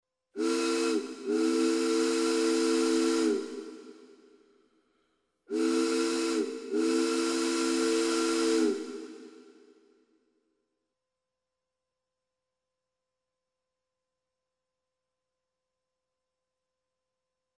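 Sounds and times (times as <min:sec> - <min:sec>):
ship horn: 0:00.4 - 0:03.9, 0:05.5 - 0:09.5.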